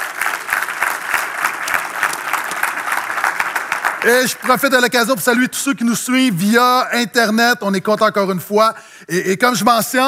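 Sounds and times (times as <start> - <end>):
crowd clapping: 0.0 - 5.5
speech: 4.0 - 10.0.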